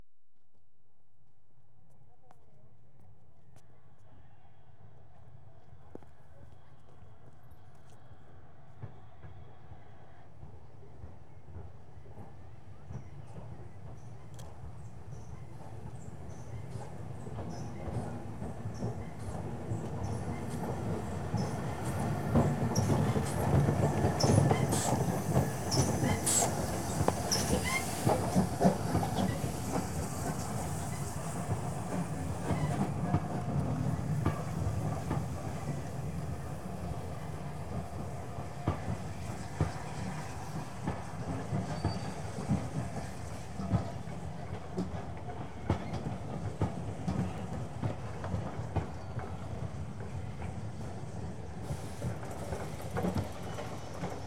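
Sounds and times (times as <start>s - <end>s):
train arriving: 11.1s - 54.2s
train right doors opening: 19.1s - 43.9s, 51.6s - 54.2s.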